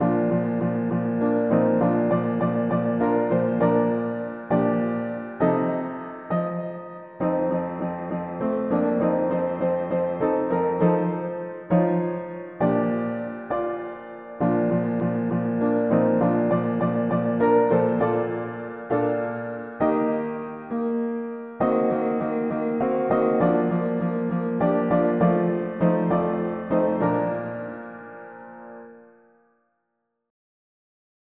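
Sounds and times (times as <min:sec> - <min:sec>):
mono piano playing hymns: 0:00.0 - 0:29.2.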